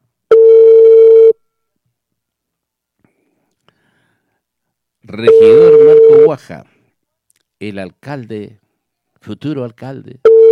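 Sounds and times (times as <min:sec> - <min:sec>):
telephone dial tone while placing a live call: 0:00.3 - 0:01.4, 0:05.3 - 0:06.3, 0:10.3 - 0:10.5
speech: 0:05.1 - 0:06.8, 0:07.6 - 0:08.6, 0:09.2 - 0:10.3.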